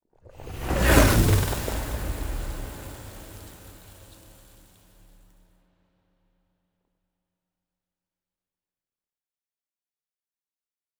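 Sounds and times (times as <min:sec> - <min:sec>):
destroyer ship moving: 0:00.4 - 0:04.7.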